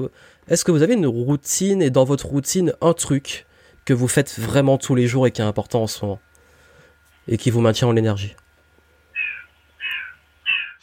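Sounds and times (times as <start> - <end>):
speech: 0.0 - 6.3, 7.2 - 8.4
faint low hum: 0.0 - 10.8
bird giving harsh crow-like caws: 9.1 - 10.8.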